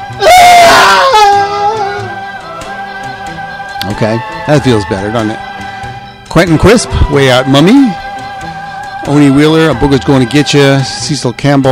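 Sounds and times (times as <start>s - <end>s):
single loud scream with wavering pitch: 0.2s - 2.1s
speech: 4.0s - 5.6s, 6.3s - 8.0s, 9.1s - 11.7s.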